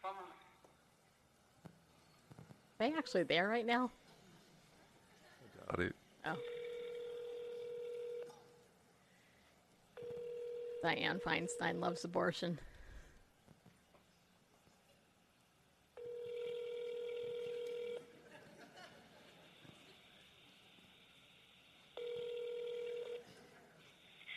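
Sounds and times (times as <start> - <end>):
faint hiss: 0.0 - 24.3
speech: 2.8 - 4.0, 5.7 - 6.5, 10.8 - 12.7
telephone ringing tone while placing a call: 6.3 - 8.5, 10.0 - 12.0, 16.0 - 18.1, 22.0 - 23.3
laughter: 18.1 - 20.1.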